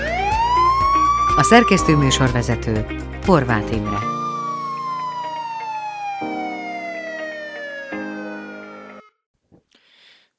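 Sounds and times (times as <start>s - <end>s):
siren wailing: 0.0s - 2.8s, 3.8s - 9.2s
speech: 1.4s - 4.1s.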